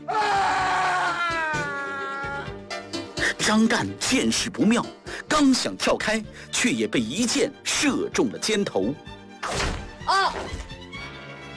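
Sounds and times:
man screaming desperately: 0:00.0 - 0:02.5, 0:10.1 - 0:10.4
speech: 0:03.4 - 0:09.7.

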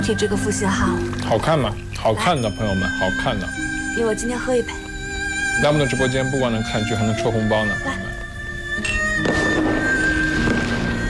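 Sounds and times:
speech: 0:00.0 - 0:04.8, 0:05.6 - 0:08.1
fireworks crackling and bursting: 0:09.0 - 0:11.0.

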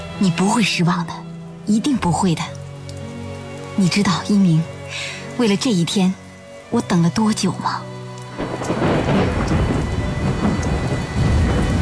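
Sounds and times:
steady heavy rain outdoors: 0:00.0 - 0:11.8
speech: 0:00.2 - 0:02.6, 0:03.8 - 0:07.8
deep rolling thunder outdoors: 0:08.4 - 0:11.8.

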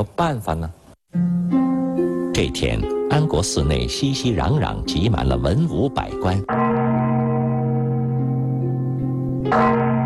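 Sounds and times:
speech: 0:00.0 - 0:01.2, 0:02.4 - 0:06.6, 0:09.5 - 0:09.8
large bronze bell in a Buddhist temple ringing: 0:02.4 - 0:10.0.

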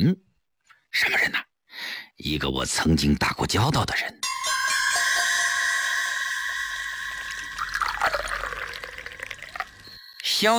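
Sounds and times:
speech: 0:00.9 - 0:04.3, 0:10.4 - 0:10.5
water pouring into a vessel: 0:05.1 - 0:10.5.

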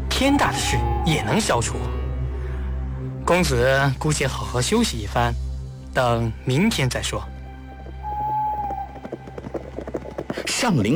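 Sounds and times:
speech: 0:00.2 - 0:02.0, 0:03.3 - 0:07.3, 0:10.6 - 0:10.9
many horses' hooves clattering in the distance as riders and carriages come in: 0:06.8 - 0:10.9.

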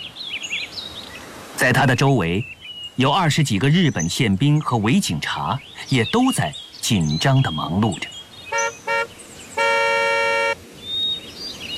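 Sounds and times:
speech: 0:01.6 - 0:08.1
car horn honks from a convoy of cars arriving at a burned ruin: 0:08.5 - 0:10.6.

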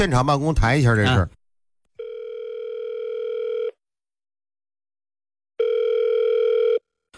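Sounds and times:
speech: 0:00.0 - 0:01.4
telephone ringback tone while call connects: 0:02.0 - 0:03.8, 0:05.6 - 0:06.8.

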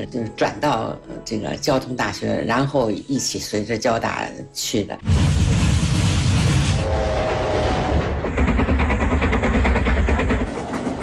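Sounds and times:
speech: 0:00.0 - 0:05.6
passenger train rumbling on rails: 0:06.0 - 0:11.0
brief tonal passenger train horn: 0:06.8 - 0:08.2
rhythmic clatter of passenger train wheels on rails: 0:07.8 - 0:11.0.

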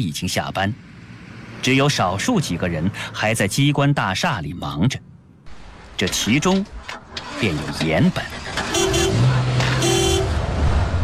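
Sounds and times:
speech: 0:00.0 - 0:01.0, 0:01.6 - 0:05.1, 0:06.0 - 0:08.4
steady rumble of traffic: 0:00.0 - 0:11.0
sedan horn honking from below a building at night: 0:08.4 - 0:10.5.

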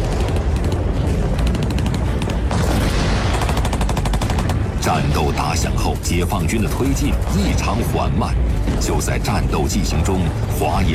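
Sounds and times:
rapid bursts of gunfire in battle: 0:00.0 - 0:05.1
deep rumbling roar of artillery in battle: 0:00.0 - 0:10.9
speech: 0:04.9 - 0:10.9.

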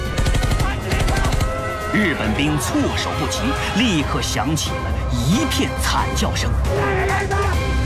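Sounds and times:
machine-gun fire sound effect: 0:00.1 - 0:01.6
speech: 0:01.9 - 0:07.7.

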